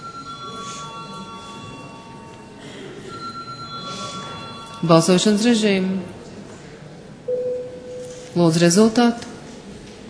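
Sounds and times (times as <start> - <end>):
electric bell ringing in a parliament chamber to call a vote: 0.0 - 5.6
low murmur: 0.0 - 10.0
speech: 4.8 - 6.2, 8.4 - 9.3.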